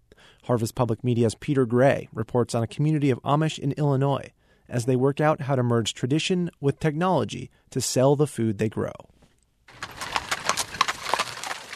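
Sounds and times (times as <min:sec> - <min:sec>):
speech: 0:00.4 - 0:09.1
straining horse hooves clip-clopping pulling an Amish buggy in cold weather: 0:09.7 - 0:11.7.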